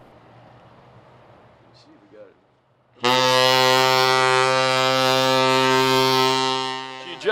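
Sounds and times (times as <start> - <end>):
ship's whistle being tested on deck: 3.0 - 7.3.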